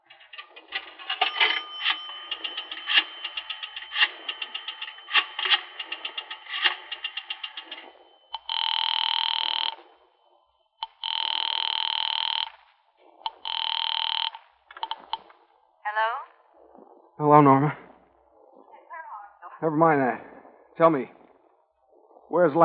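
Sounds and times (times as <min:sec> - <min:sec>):
telephone ringing: 0:00.0 - 0:09.9, 0:10.8 - 0:15.3
clicking of a number being dialed: 0:00.3 - 0:09.9, 0:10.8 - 0:15.4
speech: 0:17.2 - 0:17.8, 0:19.6 - 0:21.2, 0:22.3 - 0:22.6.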